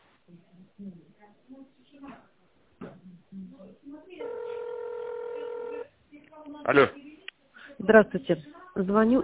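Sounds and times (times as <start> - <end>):
speech: 0.3 - 4.5, 6.4 - 7.0, 7.8 - 9.2
tinny phone-line automated greeting from a tractor and spare-parts supplier: 4.2 - 5.9.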